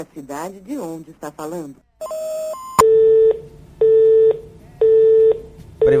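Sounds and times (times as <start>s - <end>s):
speech: 0.0s - 2.4s
telephone busy tone after a dropped call: 2.0s - 5.9s.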